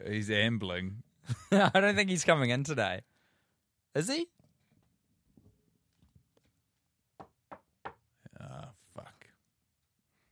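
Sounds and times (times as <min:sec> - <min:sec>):
speech: 0:00.0 - 0:03.1, 0:03.9 - 0:04.4
sharp knocks on a door: 0:07.2 - 0:08.1.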